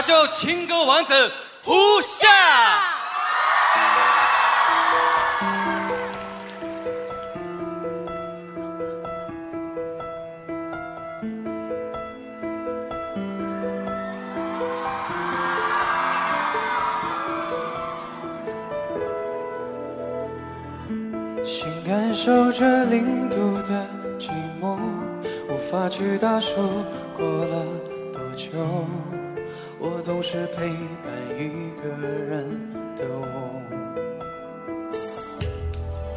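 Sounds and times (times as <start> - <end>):
speech: 0.0 - 3.0, 22.2 - 24.3, 25.7 - 27.8, 28.5 - 29.1, 29.9 - 33.8
large audience screaming and cheering at a pop music awards show: 1.7 - 7.8, 13.6 - 20.9
music with steady sustained tones: 4.2 - 24.7.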